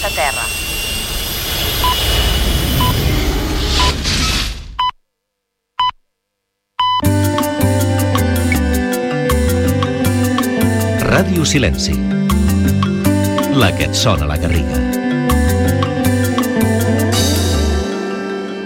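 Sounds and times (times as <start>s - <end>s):
spaceship taking off with jet-like roar: 0.0s - 4.7s
bright electronic music with repeated tones: 7.0s - 18.6s
speech: 11.2s - 12.2s, 13.6s - 14.8s.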